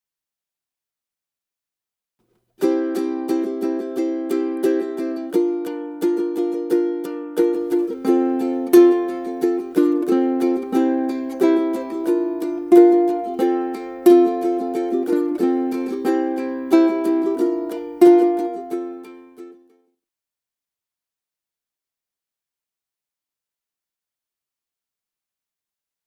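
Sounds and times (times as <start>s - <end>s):
ukulele music: 2.6s - 19.8s.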